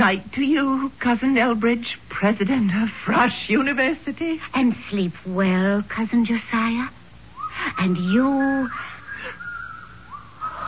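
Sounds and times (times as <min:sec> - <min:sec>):
speech: 0:00.0 - 0:07.0, 0:07.6 - 0:08.9
person whistling in a thin high tone: 0:08.7 - 0:10.6.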